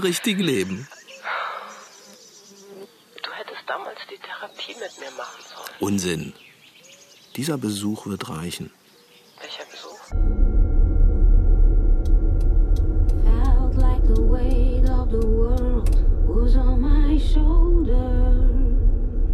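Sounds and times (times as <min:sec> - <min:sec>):
speech: 0:00.0 - 0:01.0, 0:04.1 - 0:06.5, 0:07.4 - 0:08.8
car driving along a road with low engine rumble: 0:10.1 - 0:19.3.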